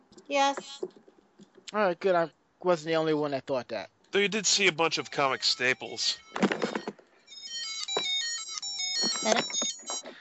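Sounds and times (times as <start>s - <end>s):
speech: 0.3s - 1.1s, 1.7s - 6.3s, 9.3s - 9.6s
mobile phone ringtone playing a bright electronic melody of stepping tones: 4.2s - 10.1s.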